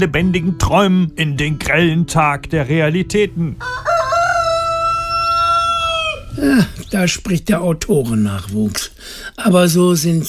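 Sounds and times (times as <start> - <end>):
speech: 0.0 - 3.9, 6.4 - 10.2
neighbor's rooster crowing at morning: 3.6 - 6.3.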